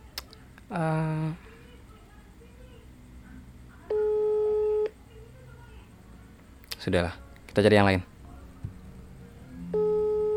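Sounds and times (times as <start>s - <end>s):
quiet noise: 0.0s - 10.3s
speech: 0.7s - 1.5s, 6.8s - 8.1s
telephone ringback tone for an outgoing call: 3.9s - 4.9s, 9.6s - 10.3s.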